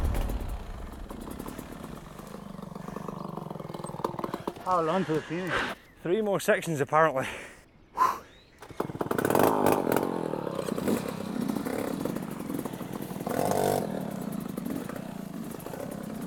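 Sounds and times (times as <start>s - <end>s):
two-stroke motorbike engine droning during a race, stuck unable to change gear: 0.0s - 4.9s, 8.6s - 16.2s
speech: 4.7s - 7.5s.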